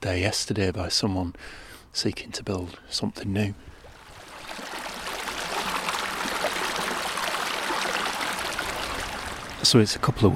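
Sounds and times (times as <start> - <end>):
speech: 0.0 - 3.7, 9.6 - 10.3
river rushing and splashing over stepping stones: 3.8 - 9.7.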